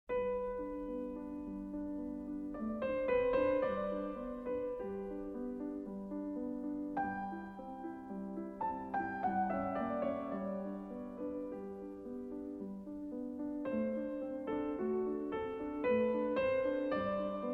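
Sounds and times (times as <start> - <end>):
modern piano: 0.1 - 17.5.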